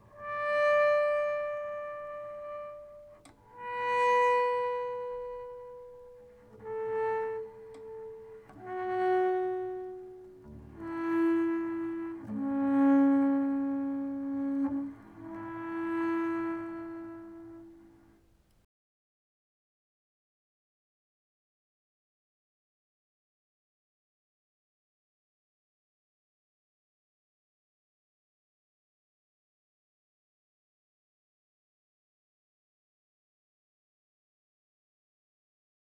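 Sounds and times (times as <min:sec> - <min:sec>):
slow bowed harmonics: 0:00.0 - 0:18.2.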